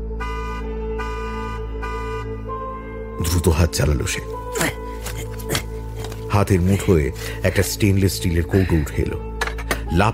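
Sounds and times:
car horn honking outside: 0.0 - 3.4
speech: 3.2 - 4.8, 6.4 - 9.3, 9.9 - 10.1.

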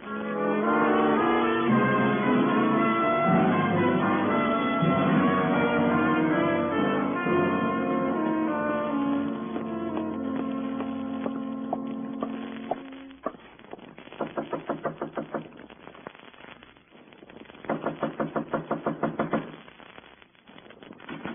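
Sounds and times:
brief sustained tone: 0.0 - 13.3
rapid insistent knocking on a door: 14.2 - 15.5, 17.7 - 19.5.

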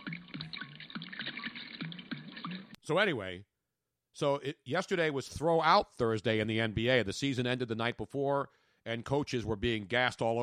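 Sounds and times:
liquid glugging out of a bottle: 0.0 - 2.8
speech: 2.9 - 3.5, 4.2 - 10.4.

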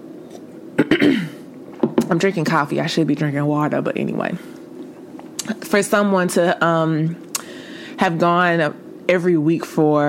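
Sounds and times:
person clearing throat: 0.8 - 1.4
person coughing: 0.8 - 1.4
speech: 2.1 - 4.6, 5.5 - 7.2, 8.0 - 10.0.

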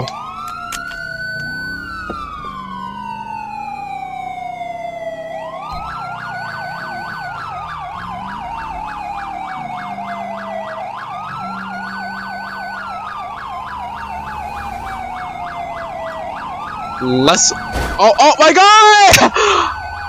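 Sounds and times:
police car siren wailing: 0.0 - 20.0
speech: 17.0 - 19.8.

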